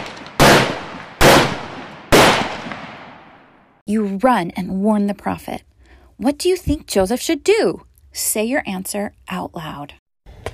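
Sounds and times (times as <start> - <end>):
gunshots at night near a camp: 0.0 - 3.5
speech: 3.9 - 10.0.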